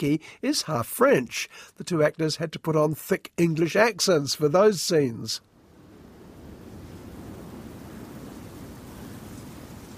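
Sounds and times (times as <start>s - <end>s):
speech: 0.0s - 5.5s
sea waves breaking on the shore: 5.6s - 9.9s.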